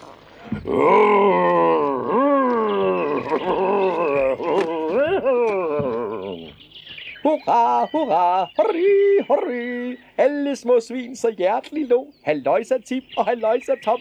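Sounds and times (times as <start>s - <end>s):
laughter: 0.4s - 6.6s, 7.2s - 10.4s
person imitating a wolf roaring inside a closed barrel: 0.4s - 6.6s
speech: 0.6s - 1.4s, 7.4s - 13.9s.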